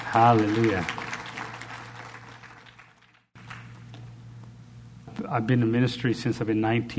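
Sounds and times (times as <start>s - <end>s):
church audience applauding: 0.0s - 3.8s
low hum: 0.0s - 6.9s
speech: 0.1s - 1.0s, 5.3s - 6.9s.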